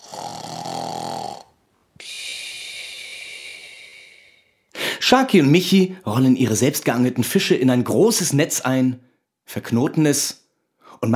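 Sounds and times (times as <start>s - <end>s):
person softly snoring while sleeping deeply: 0.0s - 4.5s
speech: 5.1s - 10.4s, 11.0s - 11.1s.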